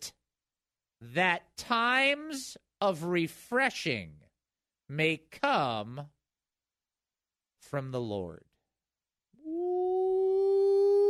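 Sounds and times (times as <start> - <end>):
speech: 1.0 - 4.2, 4.9 - 6.2, 7.6 - 8.5
dog howling: 9.5 - 11.0.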